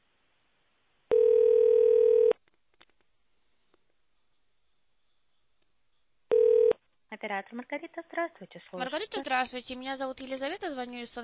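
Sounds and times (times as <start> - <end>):
telephone ringing tone while a call is being transferred: 1.1 - 2.4, 6.3 - 6.8
speech: 7.2 - 11.2.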